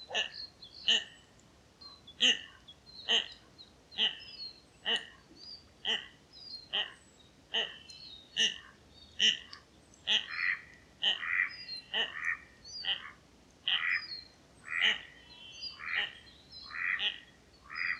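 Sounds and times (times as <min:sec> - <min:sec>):
Common goldeneye Bucephala clangula giving short rasping calls: 0:02.2 - 0:03.4, 0:04.0 - 0:04.2, 0:04.8 - 0:05.1, 0:05.8 - 0:06.1, 0:06.7 - 0:07.8, 0:08.4 - 0:14.0, 0:14.7 - 0:15.1, 0:15.8 - 0:17.9.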